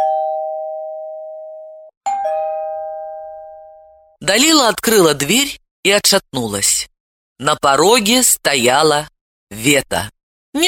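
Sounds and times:
electronic doorbell chime at a front door: 0.0s - 4.2s
speech: 4.3s - 10.6s.

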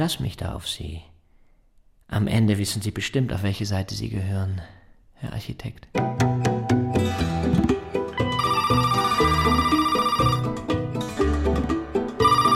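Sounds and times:
speech: 0.0s - 1.1s, 2.1s - 6.3s
busy rhythmic music: 6.0s - 12.5s
electronic telephone ringing in an architecture office: 8.2s - 10.8s, 12.1s - 12.5s.

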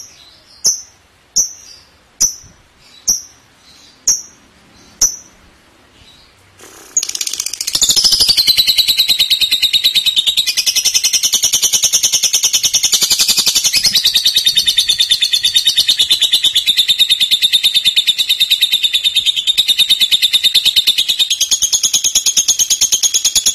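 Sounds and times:
lovebird rapid stuttering chatter song: 6.6s - 23.5s.

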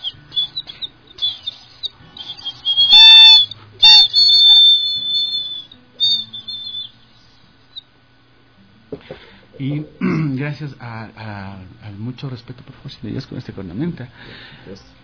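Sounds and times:
mountain and coastal songbirds chirping and whistling: 0.0s - 8.0s
speech: 9.6s - 15.0s.

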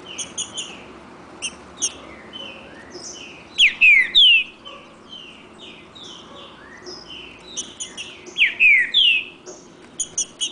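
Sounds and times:
second wild free bird singing in contest: 0.0s - 10.5s
wild Green-winged saltator singing whistled notes in the bush: 1.4s - 4.5s, 5.2s - 10.5s.

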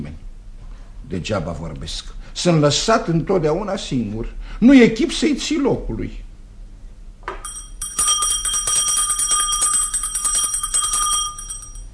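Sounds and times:
speech: 1.1s - 6.2s
small hand bell ringing: 7.4s - 11.9s.

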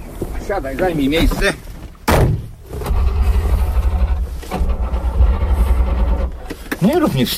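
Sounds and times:
speech: 0.5s - 1.7s, 6.8s - 7.3s
old Syrena car engine starting: 2.3s - 7.3s.

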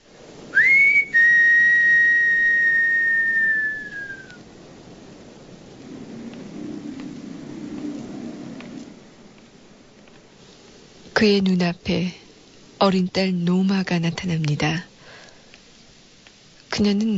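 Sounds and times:
soft low rushing noise: 0.0s - 13.4s
man whistling on a windy street: 0.5s - 4.4s
speech: 11.2s - 12.2s, 12.8s - 14.9s, 16.8s - 17.1s.

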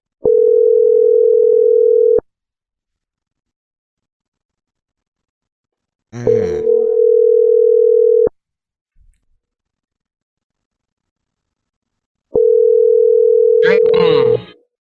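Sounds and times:
telephone ringing tone: 0.2s - 2.2s, 6.6s - 8.3s, 12.4s - 14.5s
person talking: 6.2s - 6.9s, 13.6s - 14.6s.

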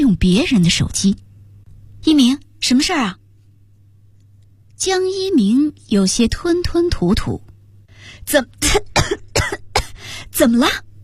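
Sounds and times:
speech: 0.1s - 1.3s, 2.0s - 3.2s, 4.8s - 7.5s, 8.3s - 9.2s, 10.4s - 10.9s
harsh coughing after nearly choking: 8.6s - 10.0s.

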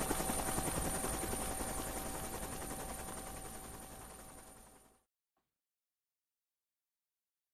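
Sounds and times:
helicopter rotor chopping as it flies away over treetops: 0.0s - 4.9s.

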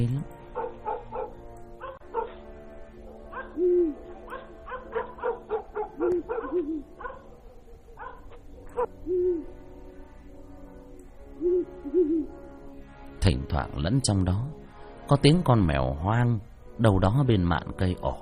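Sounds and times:
dogs barking across a village at night: 0.4s - 8.9s
owl hooting: 3.0s - 10.0s, 10.9s - 12.6s
speech: 13.6s - 18.2s.

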